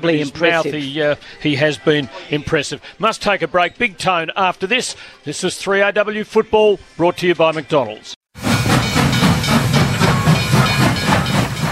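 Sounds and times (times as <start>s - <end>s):
speech: 0.0s - 8.2s
loud continuous steam hiss: 8.4s - 11.7s
rhythmic chuffing bursts of steam: 8.4s - 11.7s.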